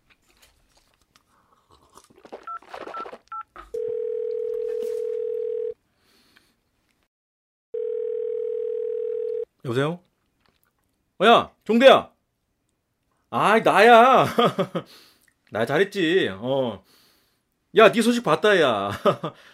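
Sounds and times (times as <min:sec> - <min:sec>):
crunching noises: 0:00.0 - 0:03.8
loud steady telephone tone: 0:02.5 - 0:05.8, 0:07.8 - 0:09.5
speech: 0:09.7 - 0:10.1, 0:11.2 - 0:12.1, 0:13.3 - 0:17.0, 0:17.7 - 0:19.5.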